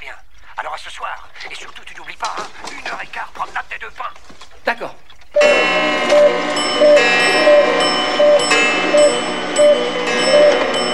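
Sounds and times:
several clocks chiming the hour: 5.4 - 10.9.

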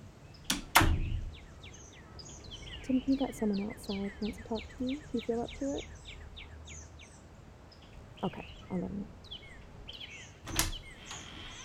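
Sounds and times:
faint bird chirps: 0.2 - 11.6
door being opened: 0.5 - 1.4, 10.4 - 11.6
speech: 2.9 - 6.0, 8.2 - 9.2.

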